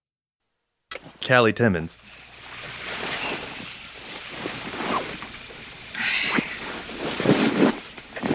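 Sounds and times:
speech: 1.3 - 2.2
bed sheets rustling as someone wakes up: 2.4 - 8.3.

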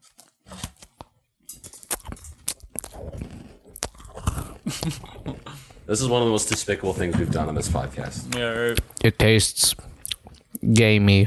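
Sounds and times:
people biting and chewing cookies: 0.0 - 9.1, 9.8 - 10.9
speech: 4.8 - 5.1, 5.9 - 9.9, 10.6 - 11.2.

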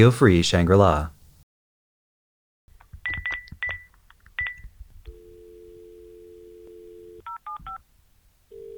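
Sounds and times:
speech: 0.0 - 1.2
telephone keypad tones dialing a helpline: 3.1 - 7.8
steady dial tone: 5.1 - 7.3, 8.5 - 8.7.

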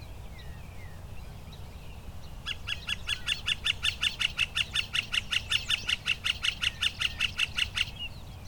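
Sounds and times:
northern flicker calling loudly: 2.5 - 8.1.

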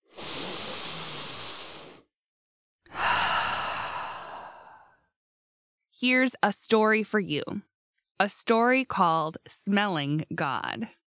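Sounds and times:
deep breath drawn and let out: 0.0 - 2.1, 2.9 - 5.1
speech: 6.0 - 11.0.

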